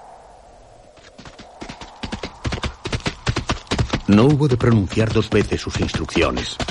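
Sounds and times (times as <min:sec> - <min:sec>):
horse hooves galloping: 0:00.9 - 0:06.6
speech: 0:04.1 - 0:06.6.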